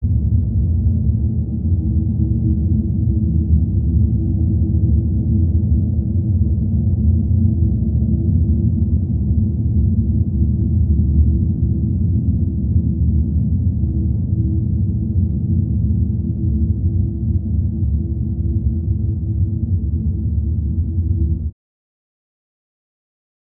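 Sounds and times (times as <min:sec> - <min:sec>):
mid bass ambient drone: 0:00.0 - 0:21.5.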